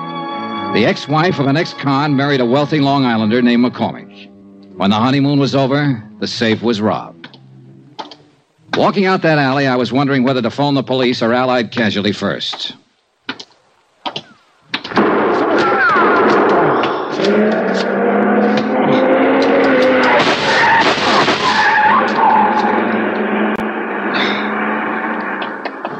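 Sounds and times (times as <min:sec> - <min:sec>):
speech: 0:00.7 - 0:07.2, 0:08.8 - 0:12.8
coupe tyres screeching in a skid: 0:14.1 - 0:25.9
gunshots: 0:14.9 - 0:17.0, 0:19.7 - 0:21.7
long black chrome coupe engine roaring, gunning out of an alley: 0:16.4 - 0:25.9.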